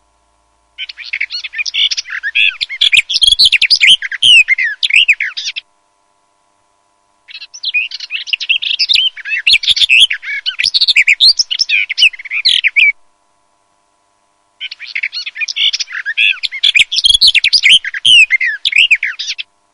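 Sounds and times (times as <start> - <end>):
garden warbler babbling warbled song: 0.8 - 5.7, 7.3 - 13.0, 14.6 - 19.5.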